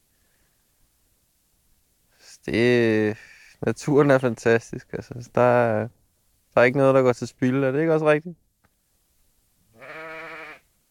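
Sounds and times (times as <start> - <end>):
speech: 2.4 - 6.0, 6.6 - 8.4
sheep bleating: 9.7 - 10.7.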